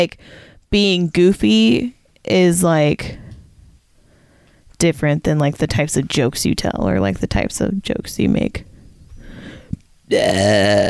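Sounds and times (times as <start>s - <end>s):
speech: 0.0s - 3.2s, 4.8s - 8.7s, 10.1s - 10.8s
loud drawn-out deep croaky burp: 10.1s - 10.8s.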